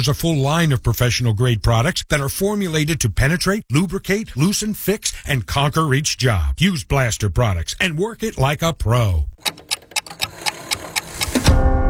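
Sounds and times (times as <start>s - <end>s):
speech: 0.0s - 9.6s
clock ticking: 7.8s - 11.6s.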